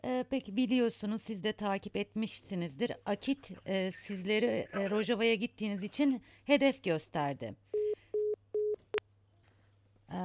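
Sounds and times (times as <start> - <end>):
speech: 0.3 - 7.8
telephone busy tone after a broadcast phone connection drops: 7.8 - 9.0.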